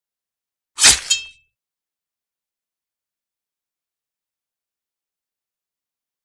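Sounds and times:
sword stabbing through: 0.8 - 1.4.

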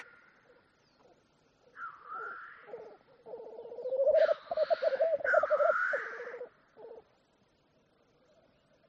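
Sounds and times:
black grouse low rapid bubbling coo: 2.7 - 7.0.

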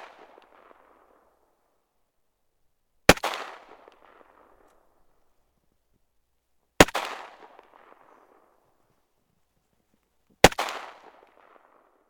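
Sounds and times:
AK-47 rifle gunshots: 3.1 - 4.5, 6.8 - 8.1, 10.4 - 11.5.

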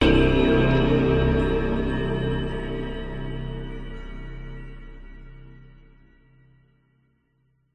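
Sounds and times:
dark sinister mysterious horror stab: 0.0 - 6.2.

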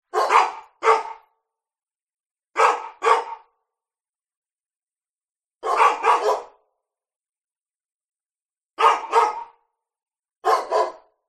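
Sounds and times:
two labradors barking at slight distance with echo in a neighbourhood: 0.1 - 1.4, 2.6 - 3.6, 5.6 - 6.7, 8.8 - 9.6, 10.4 - 11.2.

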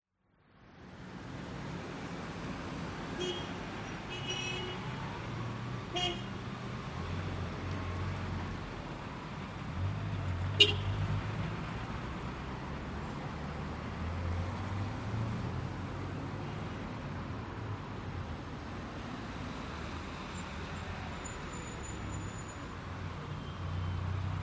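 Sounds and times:
cars pulling in and away outside a hotel in Doha Qatar at night: 0.5 - 24.4
car horn honks in Doha Qatar: 10.6 - 11.0.

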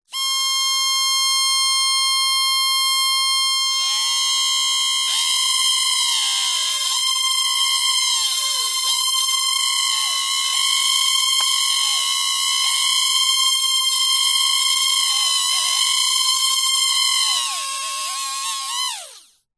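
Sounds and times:
drone micro motor whirring without propellers, with pitch fluctuations: 0.1 - 19.5.

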